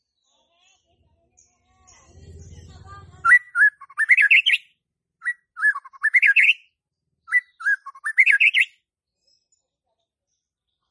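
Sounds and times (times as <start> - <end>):
white-rumped shama whistled song: 3.3 - 6.6, 7.3 - 8.8.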